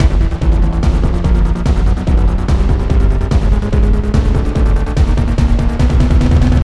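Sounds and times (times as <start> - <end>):
stinger: 0.0 - 6.6.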